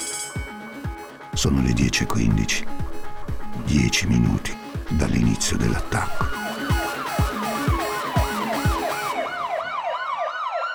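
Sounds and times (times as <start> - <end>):
speech: 1.4 - 2.9, 3.6 - 6.4
police sirens wailing: 6.1 - 10.7.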